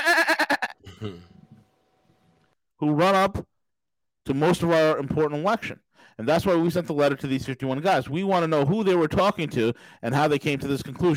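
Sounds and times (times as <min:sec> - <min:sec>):
sheep bleating with a quavering tremble: 0:00.0 - 0:00.8
speech: 0:01.0 - 0:01.3, 0:02.8 - 0:03.5, 0:04.2 - 0:11.1.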